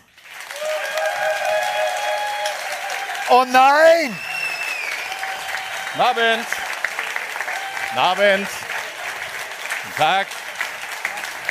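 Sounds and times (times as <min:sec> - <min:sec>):
large audience applause: 0:00.0 - 0:11.5
audience cheers and whoops: 0:00.4 - 0:08.4
speech: 0:03.3 - 0:04.3, 0:06.0 - 0:06.6, 0:07.9 - 0:08.7, 0:09.8 - 0:10.4.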